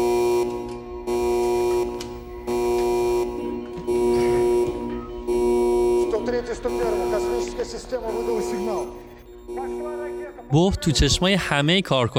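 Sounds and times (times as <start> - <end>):
loud electronic alarm buzzing through a large building: 0.0 - 11.9
agitated voices: 4.1 - 12.1
speech: 10.5 - 12.1.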